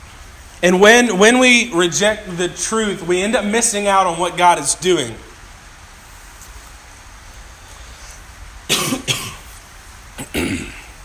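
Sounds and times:
speech: 0.6 - 5.3
person with allergies coughing: 8.7 - 9.5, 10.2 - 11.0
throat clearing: 10.2 - 11.0.

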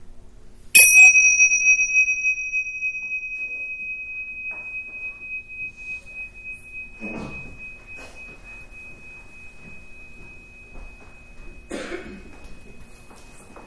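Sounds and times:
bell struck to close a guided meditation: 0.8 - 13.6.

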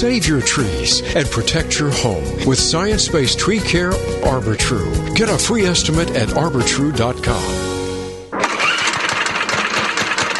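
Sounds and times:
speech: 0.0 - 7.7
small lawnmower engine starting and running: 8.3 - 10.3.

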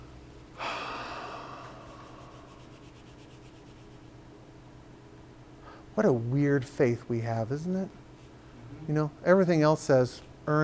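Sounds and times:
group of people taking a deep breath: 0.6 - 2.4
speech: 6.0 - 8.0, 8.9 - 10.6.

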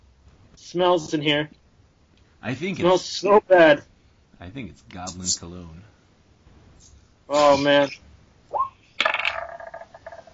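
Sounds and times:
speech: 0.6 - 1.6, 2.4 - 5.9, 6.8 - 8.1
large die clattering on a hard table: 9.0 - 10.3.

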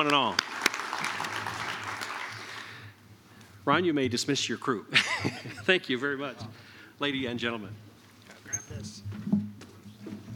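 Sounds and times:
speech: 0.0 - 0.5, 3.7 - 7.9
audience applause for panel members at a drone-industry event: 0.0 - 2.8
laughter: 4.9 - 5.8.

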